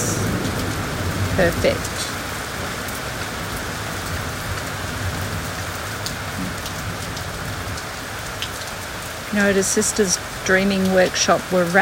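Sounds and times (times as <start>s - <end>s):
steady rain falling on leaves: 0.0s - 11.7s
speech: 1.4s - 2.1s, 9.3s - 11.7s.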